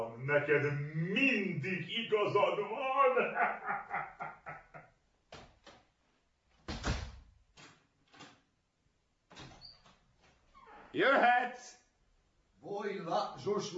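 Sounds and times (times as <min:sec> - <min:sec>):
laughter: 0:00.0 - 0:04.9
speech: 0:00.2 - 0:04.2, 0:10.9 - 0:11.8, 0:12.6 - 0:13.7
door creaking and rattling: 0:06.5 - 0:08.6, 0:09.3 - 0:11.0
heavy door thumping shut: 0:06.6 - 0:07.3.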